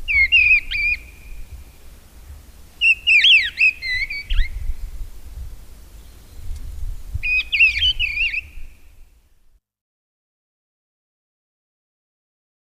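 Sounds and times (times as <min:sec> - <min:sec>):
Mistle thrush singing fluty whistled phrases: 0:00.0 - 0:01.6, 0:02.8 - 0:04.8, 0:07.2 - 0:08.9.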